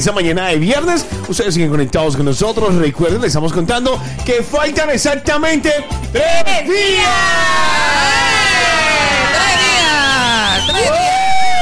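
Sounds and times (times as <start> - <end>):
speech: 0.0 - 8.7
siren sound effect wailing: 6.9 - 11.6.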